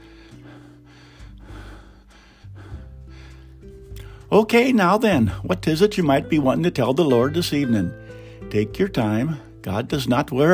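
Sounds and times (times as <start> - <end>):
heavy ragged breathing in slow uneven gasps: 0.0 - 4.4, 8.0 - 8.5
speech: 4.3 - 10.5.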